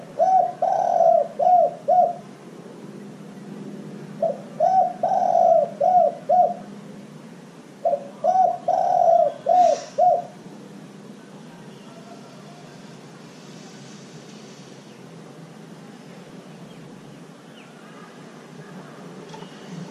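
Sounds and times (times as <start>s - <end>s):
dove cooing: 0.0s - 2.3s, 4.2s - 6.8s, 7.8s - 10.4s.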